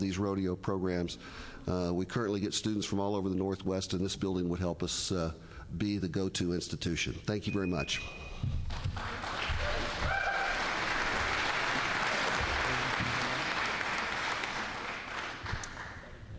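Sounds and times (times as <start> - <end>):
speech: 0.0 - 9.2
audience applause: 8.7 - 16.2.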